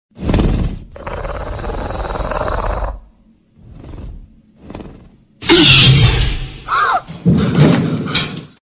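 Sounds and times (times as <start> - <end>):
alien sound: 0.2 - 7.1.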